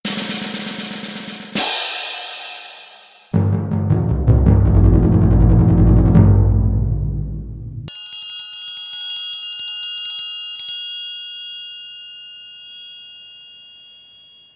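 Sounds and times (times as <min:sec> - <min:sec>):
snare drum: 0:00.0 - 0:06.6
cymbals: 0:00.1 - 0:03.4, 0:07.9 - 0:14.5
timpani: 0:00.1 - 0:07.9
triangle: 0:07.9 - 0:14.5.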